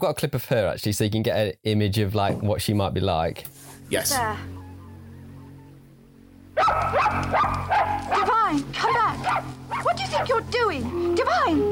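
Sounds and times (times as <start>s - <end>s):
speech: 0.0s - 4.6s, 6.6s - 11.6s
quiet hum: 2.0s - 11.6s
small dog yapping: 6.6s - 8.4s, 9.2s - 10.3s.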